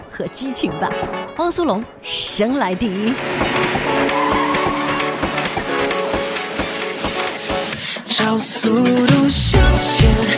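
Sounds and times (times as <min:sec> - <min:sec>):
speech: 0:00.2 - 0:04.3, 0:08.2 - 0:10.3
race car engine roaring: 0:02.8 - 0:06.1
electronic music track with synth tones and a driving beat: 0:03.0 - 0:10.3.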